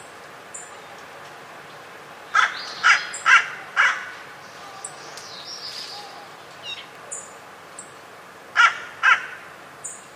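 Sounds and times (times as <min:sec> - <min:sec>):
low steady hiss: 0:00.0 - 0:10.1
bird cawing: 0:02.3 - 0:05.0, 0:08.6 - 0:09.5.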